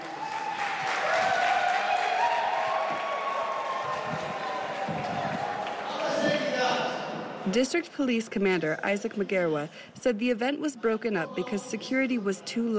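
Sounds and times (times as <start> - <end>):
large crowd of event attendees cheering and clapping: 0.0 - 6.8
speech: 7.5 - 12.7.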